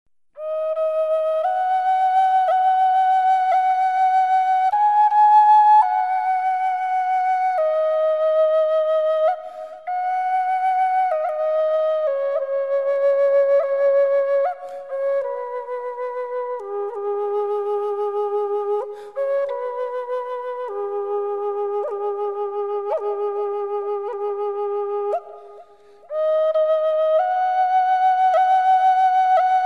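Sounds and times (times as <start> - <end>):
Indian flute: 0.3 - 29.6.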